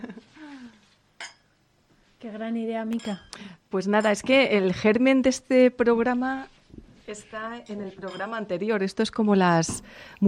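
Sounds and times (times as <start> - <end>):
glasses clinking in a toast: 1.2 - 1.5, 3.0 - 3.4
speech: 2.2 - 6.5, 7.1 - 10.2.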